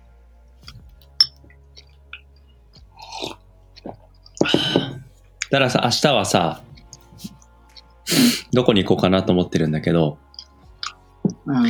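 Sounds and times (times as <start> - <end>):
two people chewing and crunching breakfast: 0.6 - 8.5, 10.2 - 11.6
speech: 5.5 - 6.7, 8.6 - 10.2.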